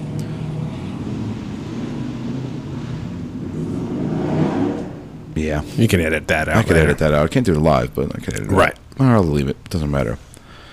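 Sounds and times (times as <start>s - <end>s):
motorbike passing by: 0.0s - 7.2s
speech: 5.5s - 10.3s.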